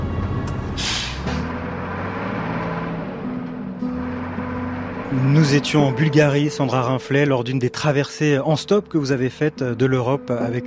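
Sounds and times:
heavy goods truck diesel engine idling: 0.0 - 10.3
heavy goods truck air brake hiss: 0.8 - 1.4
speech: 5.1 - 10.6.

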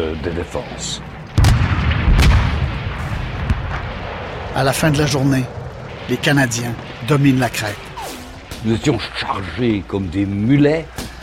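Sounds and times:
massive explosion of mines under German trenches: 0.0 - 10.5
speech: 0.1 - 1.1, 4.6 - 7.9, 8.6 - 11.0
sharp blasts: 1.0 - 10.0.

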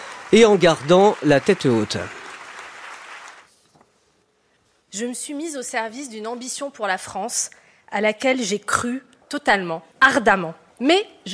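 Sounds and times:
crowd applauding loudly: 0.0 - 3.5
scattered claps: 0.0 - 3.5
speech: 0.3 - 2.2, 4.9 - 11.3
faint room noise: 3.4 - 11.3.

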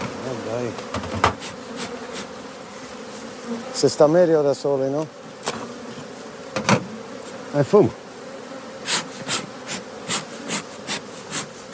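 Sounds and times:
many bees buzzing: 0.0 - 11.7
speech: 0.5 - 1.2, 3.8 - 5.2, 7.6 - 8.0
short airy hissing bursts: 1.4 - 2.4, 8.8 - 11.7.

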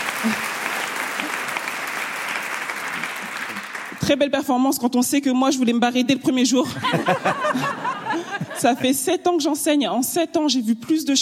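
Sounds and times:
audience applause: 0.0 - 4.2
speech: 0.2 - 0.5, 4.1 - 7.9, 8.6 - 11.2
laughter: 6.6 - 9.1.

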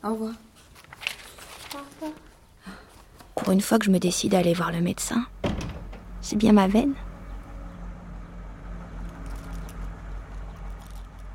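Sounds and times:
speech: 0.0 - 0.5, 3.5 - 5.4, 6.3 - 7.0
heavy truck engine rumbling in the street: 4.2 - 11.3
rattling clatter: 7.2 - 11.3.

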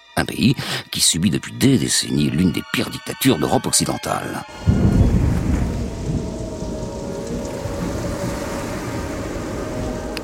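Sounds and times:
speech: 0.3 - 4.9
deep thunder rumbling in a tropical storm over the Caribbean: 4.5 - 10.2
heavy rain in a tropical storm over the Caribbean: 4.5 - 10.2
rough sea in a tropical storm over the Caribbean: 4.5 - 10.2
wind blowing in a tropical storm over the Caribbean: 4.5 - 10.2.

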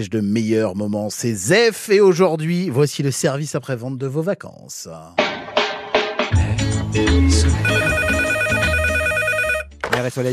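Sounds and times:
speech: 0.0 - 5.4, 6.9 - 8.0, 10.0 - 10.3
bright electronic jingle with bass line: 7.5 - 9.7
telephone bell ringing: 7.6 - 9.8.

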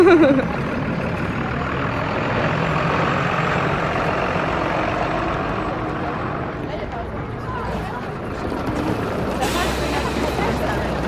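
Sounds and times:
laughter: 0.0 - 1.2
heavy diesel bus engine rumbling: 0.0 - 11.0
bus brake squeal: 9.4 - 10.8.

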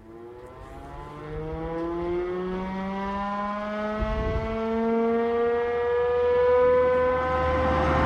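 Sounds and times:
alarm siren wailing: 0.0 - 8.0.

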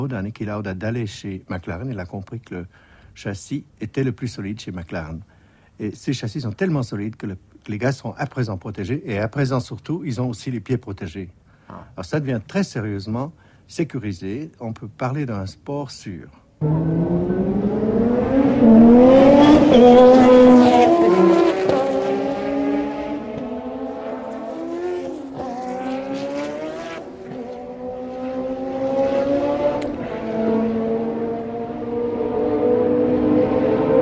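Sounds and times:
speech: 0.0 - 17.7, 18.7 - 21.2
racing cars with cold engines passing: 16.6 - 34.0.

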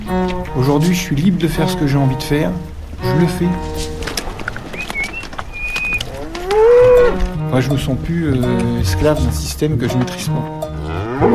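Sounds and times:
speech: 0.1 - 4.0, 7.5 - 11.3
thin bird chirps: 4.4 - 7.1
dairy cow mooing loudly: 5.5 - 7.5, 10.7 - 11.3.

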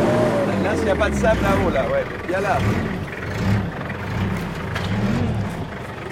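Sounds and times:
4x4 car engine revving: 0.0 - 6.1
speech: 0.8 - 3.8.

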